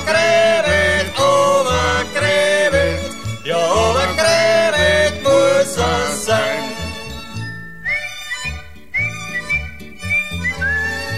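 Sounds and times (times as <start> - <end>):
instrumental accompaniment with a bouncy rhythm: 0.0 - 11.1
man whistling a lilting tune: 7.5 - 11.1.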